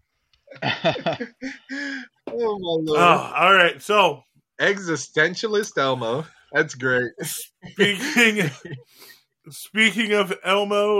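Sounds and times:
laughter: 0.5s - 2.0s, 2.9s - 4.1s, 7.2s - 8.9s, 9.6s - 10.9s
speech: 0.8s - 10.9s
person coughing: 7.8s - 8.5s.

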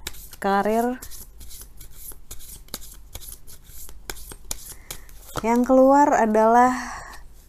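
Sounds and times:
tarot cards being shuffled for a tarot reading: 0.0s - 5.8s
speech: 0.4s - 1.2s, 5.4s - 7.0s.

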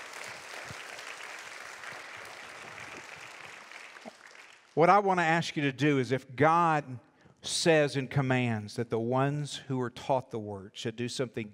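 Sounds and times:
audience applauding: 0.0s - 4.8s
speech: 4.8s - 11.5s.

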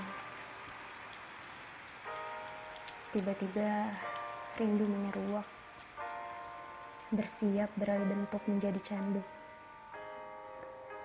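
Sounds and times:
faint drips and taps: 0.0s - 6.3s
steady rain: 0.0s - 11.0s
speech: 3.1s - 5.6s, 7.1s - 9.4s.

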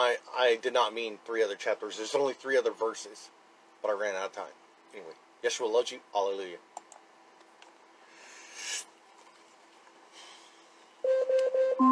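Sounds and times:
speech: 0.1s - 6.7s
Alexa smart speaker timer alarm beeping: 11.0s - 11.9s.

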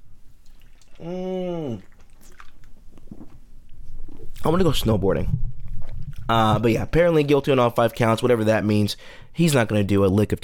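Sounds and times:
sipping a hard seltzer drink: 0.4s - 4.5s
satisfied vocal sigh: 0.9s - 1.9s
speech: 1.0s - 1.9s, 4.4s - 5.5s, 6.3s - 10.4s.

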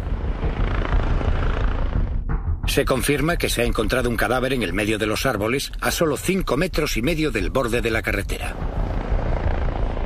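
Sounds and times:
police helicopter rotor roar: 0.0s - 2.2s, 8.3s - 10.0s
speech: 2.8s - 8.7s.

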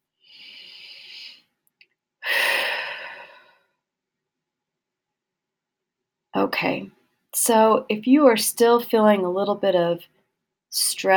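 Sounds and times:
person taking a deep breath: 2.2s - 3.6s
speech: 6.4s - 11.1s.

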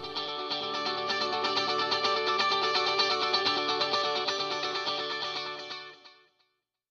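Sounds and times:
dense electric guitar passage through a stereo delay effect: 0.0s - 6.0s.

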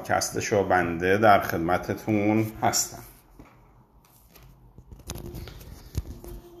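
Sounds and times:
speech: 0.0s - 3.1s
microphone being handled and clipped on: 3.0s - 6.5s.

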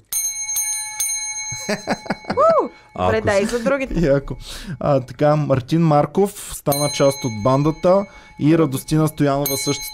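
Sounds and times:
bell ringing: 0.0s - 5.1s, 6.7s - 9.9s
speech: 1.6s - 9.9s.

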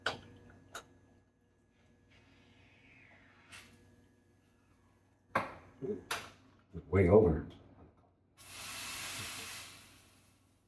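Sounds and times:
speech: 5.8s - 6.2s, 6.8s - 7.6s
espresso machine steam wand hissing: 8.4s - 10.4s.

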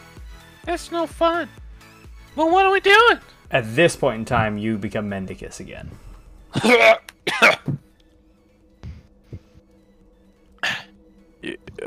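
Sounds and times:
speech: 0.7s - 1.6s, 2.4s - 7.8s
loud coughs: 6.5s - 7.8s
throat-clearing grunts: 6.5s - 7.8s.

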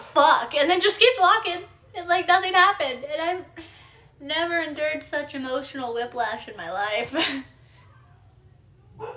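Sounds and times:
low steady background hum: 0.0s - 9.1s
speech: 0.2s - 3.6s, 4.2s - 7.5s
dog bark: 9.0s - 9.1s.

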